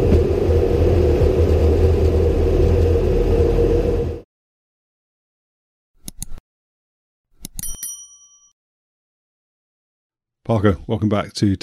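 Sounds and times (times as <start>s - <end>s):
loud rumbling burst: 0.0s - 4.2s
bright notification-style bell ding: 7.6s - 8.6s
speech: 10.5s - 11.6s.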